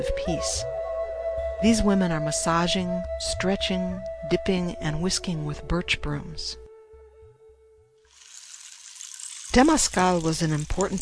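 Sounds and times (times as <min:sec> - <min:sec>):
speech: 0:00.0 - 0:00.7, 0:01.6 - 0:06.6, 0:09.5 - 0:10.9
water being poured inside a clay sweat lodge: 0:08.1 - 0:10.9.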